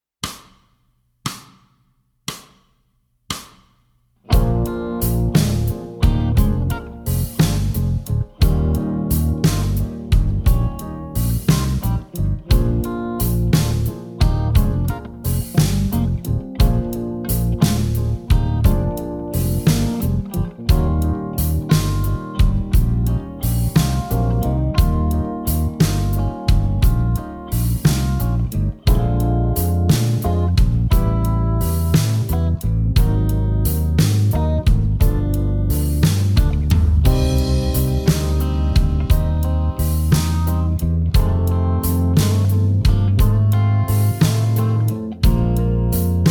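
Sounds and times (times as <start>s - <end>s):
lowdown blues music: 4.3s - 46.2s.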